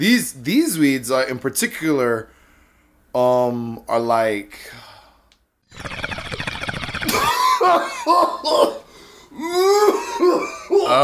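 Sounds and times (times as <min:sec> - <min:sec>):
speech: 0:00.0 - 0:02.4, 0:03.1 - 0:04.9, 0:05.7 - 0:06.1, 0:07.6 - 0:08.8, 0:09.4 - 0:11.0
coughing fit with raspy hacking and wheezy gasps: 0:07.1 - 0:08.9, 0:09.6 - 0:11.0.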